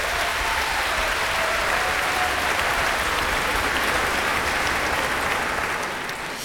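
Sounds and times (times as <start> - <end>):
large audience in an auditorium applauding: 0.0 - 6.4.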